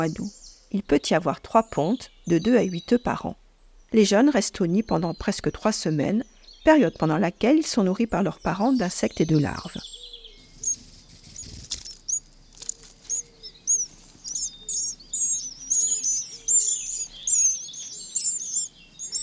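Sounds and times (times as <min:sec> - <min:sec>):
speech: 0:00.0 - 0:09.9
house sparrows chirping: 0:00.0 - 0:19.2
rustle or flutter: 0:10.4 - 0:14.5.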